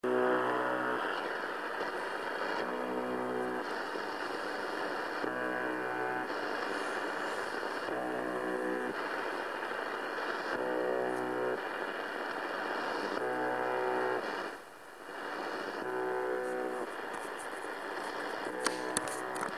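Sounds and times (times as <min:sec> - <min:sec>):
shortwave radio signal at 4625 kHz: 0:00.0 - 0:19.5.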